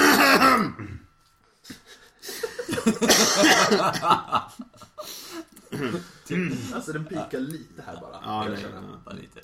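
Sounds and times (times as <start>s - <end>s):
people clearing their throats: 0.0s - 1.1s, 3.1s - 3.8s, 5.6s - 6.6s
laughter: 1.7s - 7.2s
speech: 2.9s - 4.7s, 5.7s - 9.4s.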